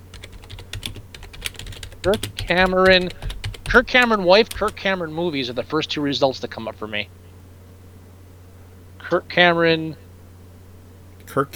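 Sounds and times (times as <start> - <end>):
typing a search on a computer keyboard: 0.0 - 4.8
speech: 2.0 - 7.2, 9.1 - 10.0, 11.3 - 11.5.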